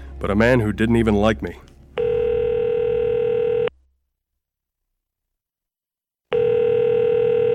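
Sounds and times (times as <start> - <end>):
speech: 0.2 - 1.7
electronic telephone ring tone on the line: 2.0 - 3.7, 6.3 - 7.5.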